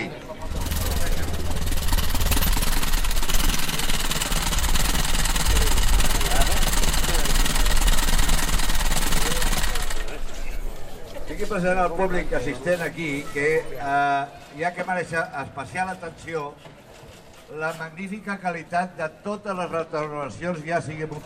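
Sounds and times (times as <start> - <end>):
crowd chatter at a classic vehicle gathering: 0.0 - 14.9
vintage Packard car engine running at a classic vehicle gathering: 0.4 - 10.2
speech: 11.5 - 16.7, 17.5 - 21.2.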